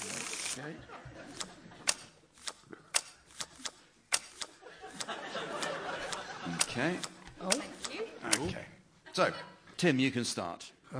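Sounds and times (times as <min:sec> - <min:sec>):
playing cards being shuffled: 0:00.0 - 0:00.6, 0:01.9 - 0:04.6
speech: 0:00.6 - 0:01.8, 0:06.8 - 0:07.7, 0:08.4 - 0:10.9
laughter: 0:00.6 - 0:02.3, 0:04.6 - 0:09.8.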